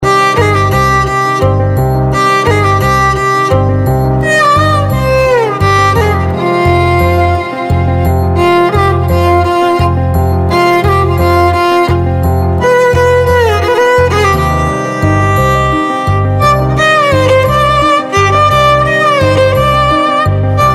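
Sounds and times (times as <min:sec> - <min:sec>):
Indian violin instrumental: 0:00.0 - 0:20.7.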